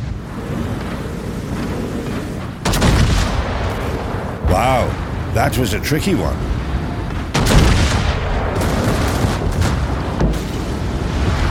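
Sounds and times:
windy surf-like wash in a naval warfare video game: 0.0s - 11.4s
battleship firing its big guns in a naval warfare video game: 2.6s - 5.5s, 6.5s - 11.4s
speech: 4.6s - 6.6s.

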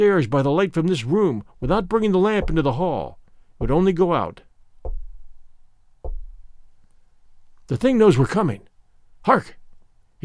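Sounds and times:
speech: 0.0s - 4.5s, 7.7s - 9.6s
heavy booming knocks on a door: 1.6s - 4.1s, 4.8s - 6.7s.

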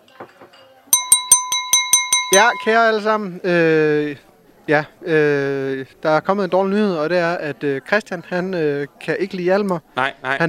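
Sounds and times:
faint murmur of voices: 0.0s - 1.2s, 2.6s - 10.4s
utensil tapping a glass: 1.0s - 3.0s
speech: 2.3s - 10.4s.

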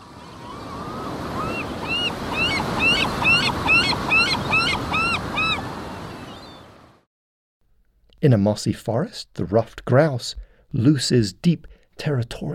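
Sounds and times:
gusting wind at the shore: 0.0s - 7.0s
ocean surf roaring at the shore: 0.0s - 7.1s
sharp repeated gull-like calls: 0.2s - 6.7s
speech: 8.2s - 12.5s.

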